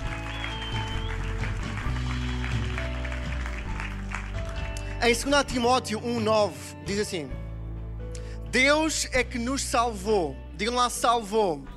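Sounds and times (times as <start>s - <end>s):
church audience clapping: 0.0s - 5.3s
speech: 5.0s - 7.4s, 8.5s - 11.7s.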